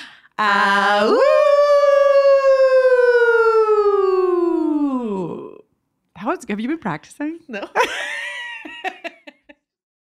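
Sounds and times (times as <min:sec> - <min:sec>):
speech: 0:00.4 - 0:01.5, 0:06.3 - 0:08.2
people howling together: 0:00.4 - 0:05.3.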